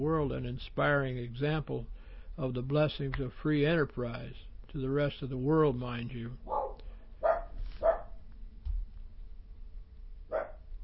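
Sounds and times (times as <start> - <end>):
speech: 0.0 - 6.6
coon dogs barking: 6.4 - 8.2, 10.3 - 10.7.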